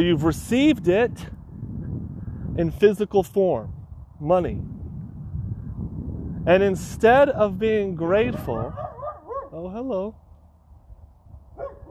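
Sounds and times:
speech: 0.0s - 1.4s, 2.6s - 4.8s, 6.4s - 8.8s, 9.6s - 10.2s
dog barking: 8.3s - 9.6s, 11.6s - 11.8s.

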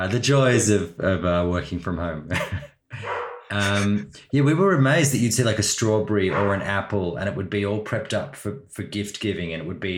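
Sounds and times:
speech: 0.0s - 2.7s, 3.5s - 9.9s
laughter: 2.3s - 4.0s
dog barking at home: 3.0s - 3.5s, 6.3s - 6.7s.

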